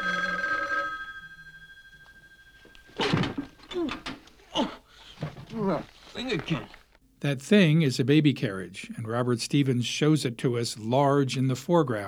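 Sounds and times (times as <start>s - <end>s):
old telephone bell ringing in an apartment building hallway: 0.0s - 3.8s
faint noise: 0.0s - 12.0s
speech: 5.6s - 12.0s.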